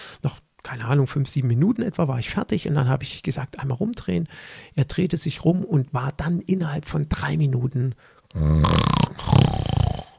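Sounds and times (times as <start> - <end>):
speech: 0.2 - 9.6
voice imitating loud snoring: 8.3 - 10.1.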